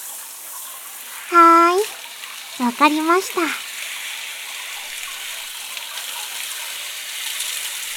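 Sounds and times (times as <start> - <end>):
warm running water wetting hair during a hair wash: 0.0 - 7.9
speech: 2.6 - 3.6.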